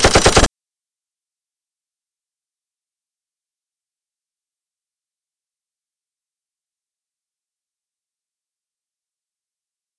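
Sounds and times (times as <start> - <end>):
submachine gun fire burst: 0.0 - 0.5.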